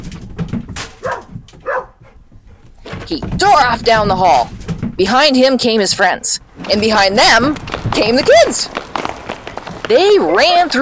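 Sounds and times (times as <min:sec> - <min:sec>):
dog giving short yelping barks: 0:01.0 - 0:02.2
speech: 0:03.1 - 0:08.8, 0:09.9 - 0:10.8.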